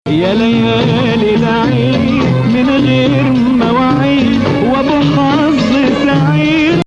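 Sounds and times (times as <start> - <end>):
Bayati Rast maqam music: 0.1 - 6.8.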